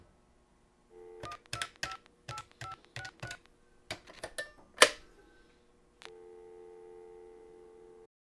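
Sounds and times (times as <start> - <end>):
1990s household corded phone: 0.9 - 3.5, 6.0 - 8.1.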